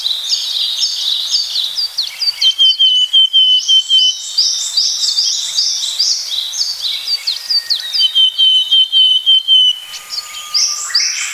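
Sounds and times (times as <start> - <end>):
dense thin chirping: 0.3 - 11.3
willow tit calling repeated notes: 2.3 - 4.2, 7.3 - 11.3.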